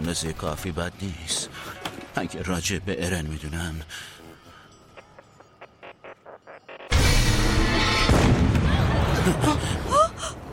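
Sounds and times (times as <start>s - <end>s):
speech: 0.1s - 1.5s, 2.2s - 4.1s, 9.2s - 9.8s
loud cannon blast: 7.0s - 9.2s.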